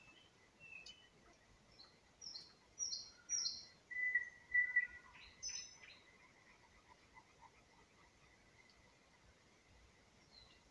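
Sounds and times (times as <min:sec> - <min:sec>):
nightingale spring song in Vinnytsia Oblast Ukraine: 0:02.2 - 0:06.0.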